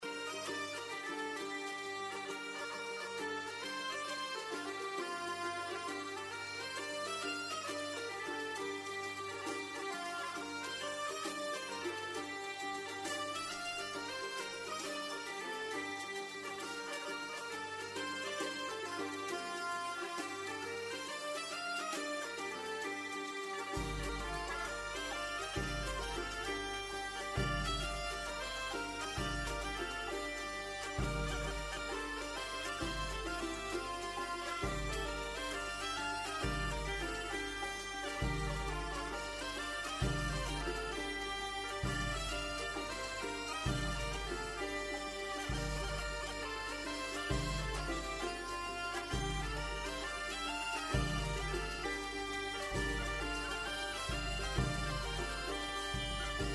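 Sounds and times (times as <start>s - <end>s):
German medieval bagpipe music: 0.0s - 56.5s.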